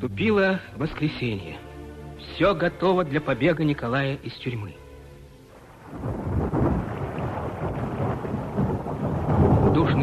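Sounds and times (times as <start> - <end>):
speech: 0.0 - 1.7, 2.3 - 4.8
distant muffled thunder rumbles: 5.8 - 10.0.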